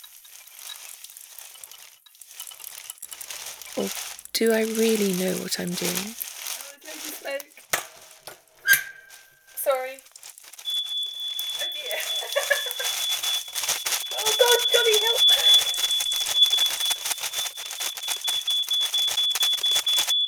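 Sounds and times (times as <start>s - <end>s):
burst of broadband noise: 3.5s - 20.1s
speech: 3.8s - 6.2s
shrill high-pitched alarm beeping: 10.7s - 12.6s.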